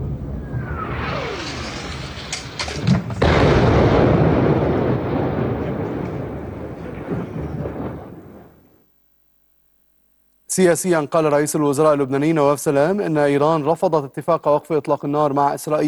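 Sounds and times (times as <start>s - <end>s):
artillery shelling blast with heavy rumble: 0.0s - 8.8s
speech: 10.6s - 15.8s.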